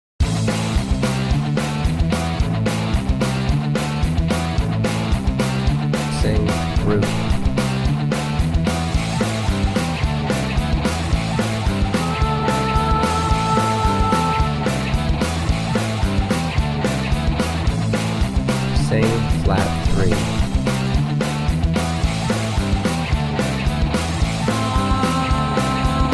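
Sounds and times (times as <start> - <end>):
punk music in the key of A: 0.2 - 26.1.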